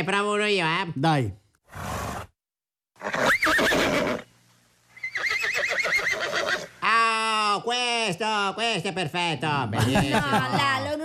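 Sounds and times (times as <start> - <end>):
speech: 0.0 - 1.9, 7.6 - 11.0
horse neighing: 3.0 - 4.3, 5.0 - 6.8
laughter: 9.7 - 11.0.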